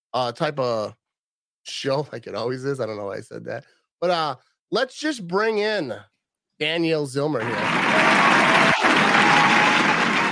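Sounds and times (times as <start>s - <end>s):
speech: 0.1s - 1.0s, 1.6s - 8.8s
crowd applause: 7.4s - 10.3s.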